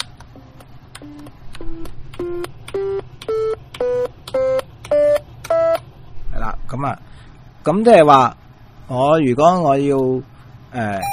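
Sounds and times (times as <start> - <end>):
calculator keys beeping as digits are pressed: 1.0 - 5.8
speech: 6.7 - 11.1.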